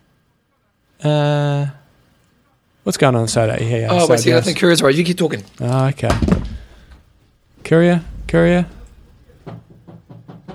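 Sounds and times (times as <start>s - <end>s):
speech: 1.0s - 1.8s, 2.9s - 6.5s, 7.7s - 8.8s
low rumble: 5.5s - 10.4s
knocking on a window: 9.3s - 10.5s.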